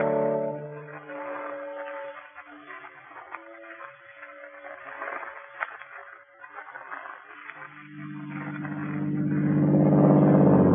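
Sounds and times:
Daimler car engine humming and revving as the car pulls away: 7.7s - 10.7s.

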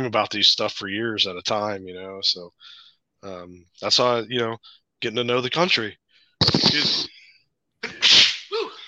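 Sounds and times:
speech: 0.0s - 7.2s
person sneezing loudly: 6.4s - 7.1s, 7.8s - 8.8s.

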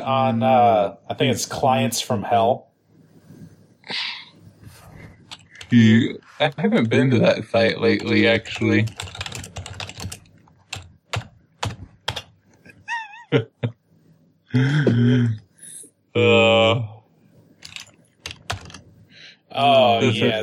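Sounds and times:
speech: 0.0s - 2.7s, 3.9s - 4.2s, 5.7s - 9.4s, 13.3s - 13.8s, 14.5s - 15.4s, 16.2s - 17.0s, 19.6s - 20.4s
typing on a computer keyboard: 5.2s - 5.8s, 7.9s - 12.3s, 17.6s - 18.8s.

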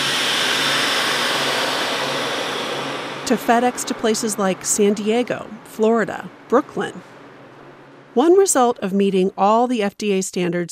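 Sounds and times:
hiss of air being drawn out of a bag: 0.0s - 3.2s
vacuum sealer sealing a double-bagged femur bone in a processing room: 0.0s - 3.3s
speech: 3.3s - 7.1s, 8.2s - 10.6s.

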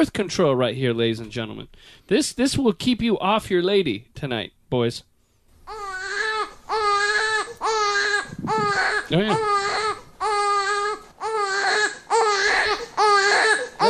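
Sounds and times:
adult speaking: 0.0s - 5.1s, 8.4s - 9.5s
speech: 0.0s - 5.1s, 8.4s - 9.8s
infant boy screaming and crying: 5.7s - 13.8s.

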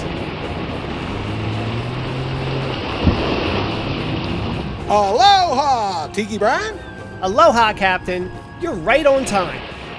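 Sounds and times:
boat engine droning: 0.0s - 9.9s
waves and water washing: 0.0s - 9.9s
speech: 4.9s - 9.7s.

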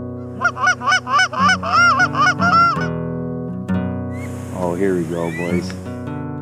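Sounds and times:
flock of snow geese honking: 0.2s - 3.0s, 4.1s - 6.1s
speech: 4.7s - 5.8s.

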